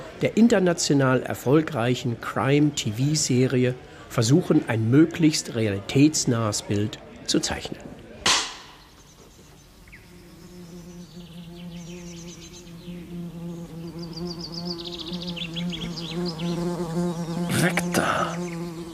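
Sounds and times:
speech: 0.2 - 7.9
wasps buzzing in peak wasp season: 9.9 - 18.9.

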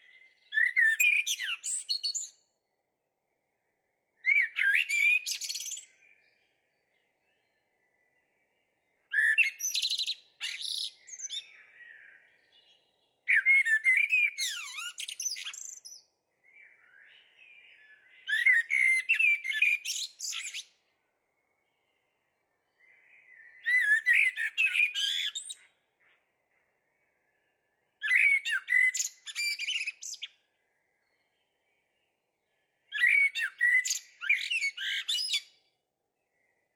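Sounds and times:
common blackbird singing: 0.0 - 36.7.

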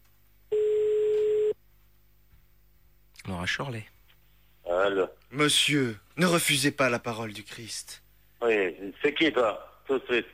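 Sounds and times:
telephone tone while calling someone back: 0.5 - 1.6
speech: 3.4 - 4.0, 4.8 - 10.3.

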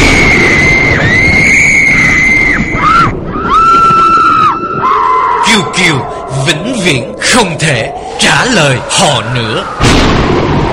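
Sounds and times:
roar of wind and rain: 0.0 - 10.7
three girls screaming in anguish: 0.3 - 5.5
speech: 6.8 - 10.4.

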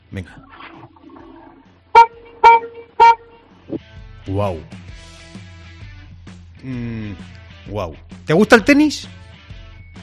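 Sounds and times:
speech: 0.1 - 0.7, 4.2 - 4.8, 6.6 - 9.2
short car horn honks: 1.9 - 3.6.

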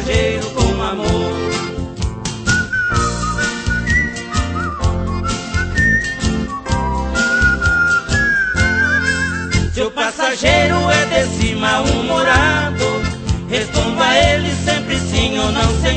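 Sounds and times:
upbeat instrumental backing with a steady beat: 0.0 - 15.9
bright clear whistled melody: 2.3 - 9.8.

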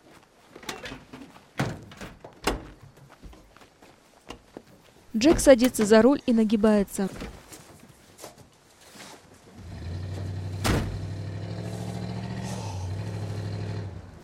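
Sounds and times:
speech: 5.2 - 7.3
police car engine rumble driving past: 9.5 - 14.2
loud thump: 10.6 - 11.0.

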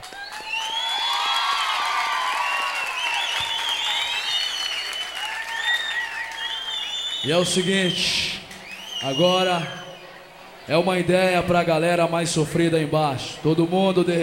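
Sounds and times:
high whistles: 0.0 - 10.1
audience cheers: 0.0 - 10.3
audience applause at a live rap concert: 0.0 - 10.6
speech: 7.2 - 8.4, 9.0 - 9.8, 10.7 - 14.2.

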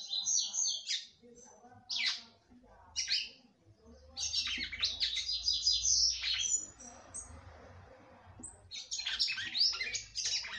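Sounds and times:
red-cowled cardinal warbling and chirping: 0.0 - 1.2, 1.8 - 3.4, 4.0 - 7.5, 8.4 - 10.5
faint low hum: 1.2 - 10.5.

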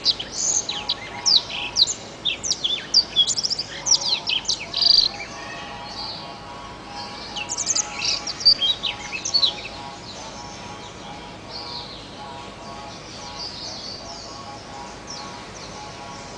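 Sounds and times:
Oriental magpie-robin singing: 0.0 - 16.3
steady low hum: 0.0 - 16.3.

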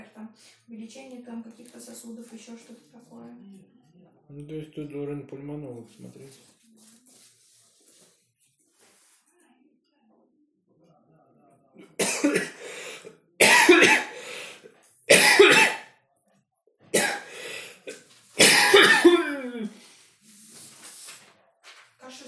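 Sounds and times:
speech: 0.4 - 6.6
harsh raspy coughing from a patient at a GP appointment: 11.8 - 15.9, 16.9 - 19.8.

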